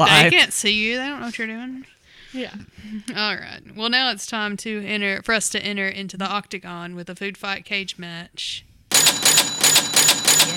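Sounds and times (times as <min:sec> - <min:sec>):
speech: 0:00.0 - 0:08.7
cash register bell ringing: 0:08.9 - 0:10.5
rapid rhythmic mechanical clacking: 0:08.9 - 0:10.5.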